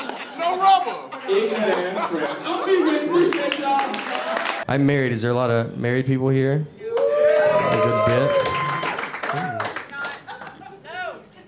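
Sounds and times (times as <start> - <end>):
laughter: 0.0 - 4.6, 7.5 - 11.2
speech: 0.5 - 6.8, 7.7 - 8.6
scattered audience applause: 1.6 - 4.7, 7.0 - 10.5.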